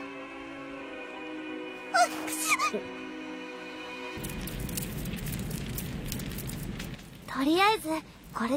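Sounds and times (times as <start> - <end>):
campfire crackling in a cold mountain setting: 1.7 - 8.5
speech: 2.0 - 3.0, 7.3 - 8.5.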